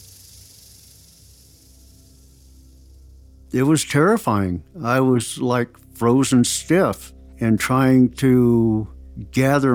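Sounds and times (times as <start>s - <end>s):
rattlesnakes rattling: 0.0s - 4.2s
speech: 3.5s - 9.7s.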